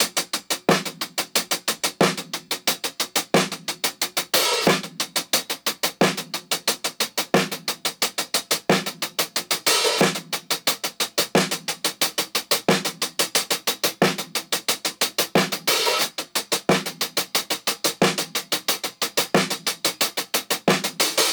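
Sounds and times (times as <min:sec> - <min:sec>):
taped top drum loop with 16th-note hi-hat and snare: 0:00.0 - 0:21.3.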